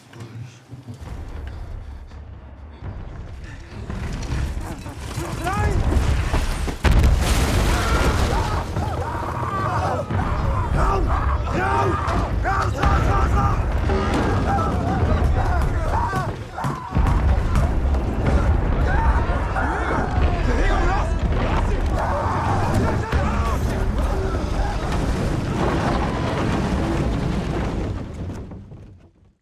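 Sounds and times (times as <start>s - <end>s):
artillery explosions from a creeping barrage in a First World War film battle scene: 1.0s - 28.7s
voices of soldiers in a film battle scene: 7.8s - 26.3s.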